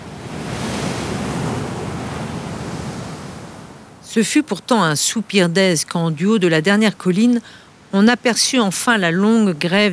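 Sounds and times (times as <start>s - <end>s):
ocean waves breaking on the shore: 0.0s - 4.0s
wind: 0.0s - 9.9s
speech: 4.1s - 9.9s.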